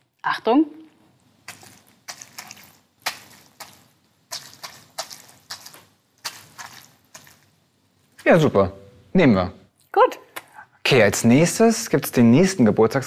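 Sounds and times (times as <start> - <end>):
speech: 0.2 - 0.8, 8.3 - 10.2, 10.9 - 13.0
soaked cloth tapped and kneaded by hand over a towel-covered table: 1.1 - 8.4.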